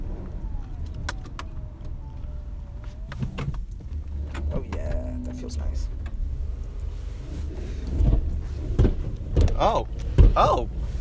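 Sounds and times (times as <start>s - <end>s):
car engine rumbling: 0.0s - 10.9s
speech: 5.5s - 6.0s, 9.6s - 10.8s.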